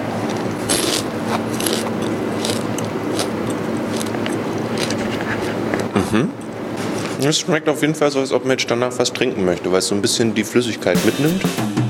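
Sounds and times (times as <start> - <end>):
crunching and chewing a large beetle: 0.2 - 5.9
speech: 6.1 - 6.4, 7.2 - 11.8.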